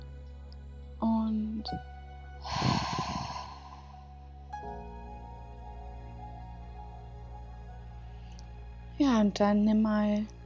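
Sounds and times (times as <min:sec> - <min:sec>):
soft sustained tonal drone: 0:00.0 - 0:10.4
speech: 0:01.6 - 0:01.9, 0:09.2 - 0:10.4
deep breath drawn in during a guided meditation: 0:02.4 - 0:04.2.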